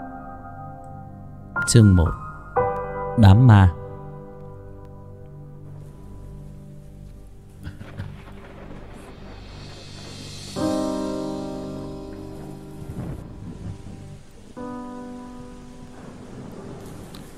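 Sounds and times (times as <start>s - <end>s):
speech: 1.7s - 2.2s, 3.2s - 3.8s
heavy rain falling: 5.6s - 17.3s.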